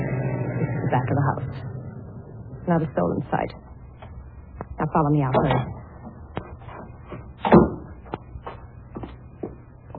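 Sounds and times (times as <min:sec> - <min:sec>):
heavy cellar door hauled open: 0:00.0 - 0:03.2
speech: 0:00.9 - 0:01.7, 0:02.7 - 0:03.6, 0:04.8 - 0:05.8.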